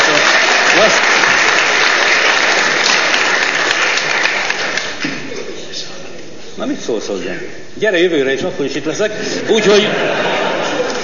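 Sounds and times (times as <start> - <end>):
loud sustained audience applause: 0.0 - 5.3, 10.4 - 11.0
speech: 6.7 - 10.3
laughter: 9.1 - 11.0.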